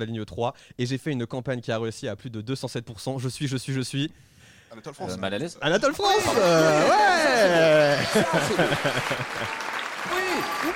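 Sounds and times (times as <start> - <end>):
speech: 0.0 - 9.7, 10.4 - 10.7
people talking and laughing: 6.0 - 10.7
canned applause triggered on sound pads: 6.3 - 10.7.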